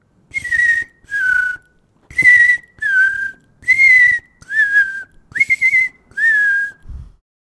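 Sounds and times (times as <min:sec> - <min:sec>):
person whistling: 0:00.3 - 0:07.0.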